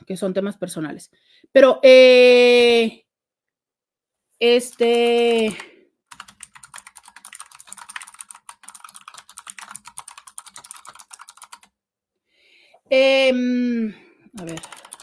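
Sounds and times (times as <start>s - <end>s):
speech: 0.1s - 3.0s, 4.4s - 5.7s, 12.9s - 14.8s
typing on a computer keyboard: 4.6s - 11.8s, 14.4s - 15.0s.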